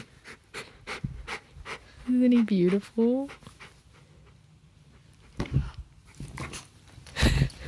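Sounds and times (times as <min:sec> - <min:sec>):
dog whimpering and panting: 0:00.0 - 0:05.2
speech: 0:02.1 - 0:03.4.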